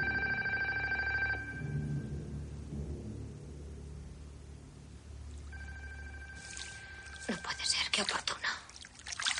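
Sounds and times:
telephone bell ringing in a large house: 0:00.0 - 0:01.6, 0:05.5 - 0:07.4
steady low rumble: 0:00.0 - 0:07.6
speech: 0:07.3 - 0:08.2.

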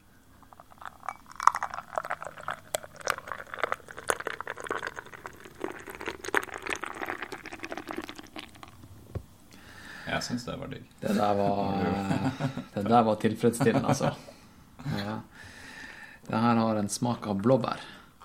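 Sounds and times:
liquid poured into a new glass, splashing and gurgling: 0:00.4 - 0:08.9
light clinks of glass: 0:01.0 - 0:02.0
speech: 0:10.2 - 0:14.3, 0:16.9 - 0:18.0
laughter: 0:11.1 - 0:12.8, 0:13.5 - 0:14.2.

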